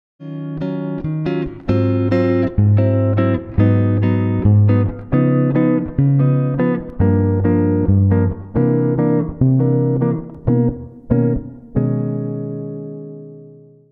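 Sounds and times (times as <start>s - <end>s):
Godin guitar switch chords: 0.2s - 13.9s.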